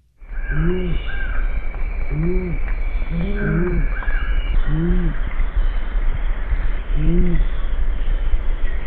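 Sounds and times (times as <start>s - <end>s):
steady hiss: 0.0s - 8.8s
owl hooting with low deep calls: 0.3s - 5.3s, 6.9s - 7.6s.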